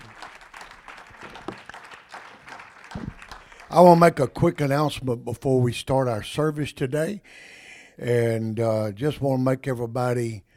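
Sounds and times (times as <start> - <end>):
audience applause: 0.0 - 4.6
speech: 3.7 - 10.5.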